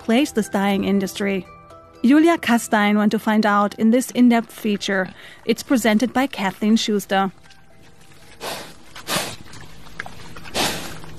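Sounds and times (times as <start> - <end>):
speech: 0.1 - 7.5
sows and piglets grunting in an outdoor enclosure on an organic farm in West Virginia: 7.8 - 11.1.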